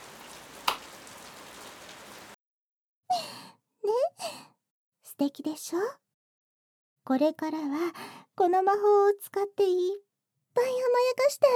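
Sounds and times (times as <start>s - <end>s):
rain pouring: 0.0s - 2.4s
sharp clap: 0.6s - 1.1s
speech: 5.2s - 6.0s, 7.1s - 11.5s.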